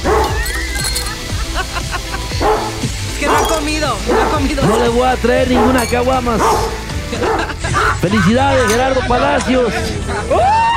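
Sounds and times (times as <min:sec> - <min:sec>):
dog barking: 0:00.0 - 0:00.4, 0:02.4 - 0:07.9
laughter: 0:00.4 - 0:03.1, 0:06.9 - 0:10.7
speech: 0:04.4 - 0:10.7.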